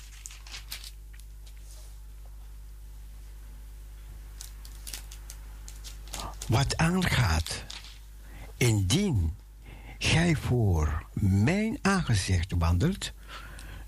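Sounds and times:
book pages turning with crisp paper rustles: 0:00.0 - 0:01.8, 0:04.4 - 0:08.0
low steady hum: 0:00.0 - 0:13.8
speech: 0:06.5 - 0:07.8, 0:08.6 - 0:09.4, 0:10.0 - 0:13.8.

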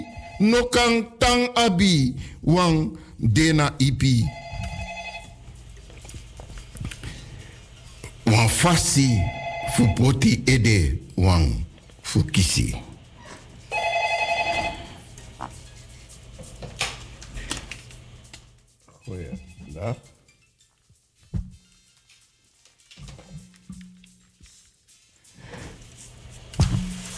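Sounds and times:
telephone ringing: 0:00.0 - 0:01.0, 0:04.0 - 0:05.4, 0:08.5 - 0:10.5, 0:13.7 - 0:15.2
speech: 0:00.4 - 0:04.4, 0:08.6 - 0:12.9, 0:19.8 - 0:20.1.

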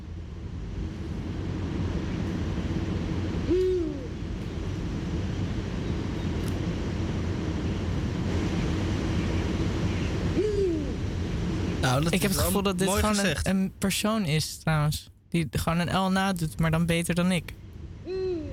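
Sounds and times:
steady wind-like rushing noise: 0:00.0 - 0:18.1
owl hooting: 0:03.4 - 0:04.2, 0:10.0 - 0:11.0
speech: 0:12.0 - 0:18.2.

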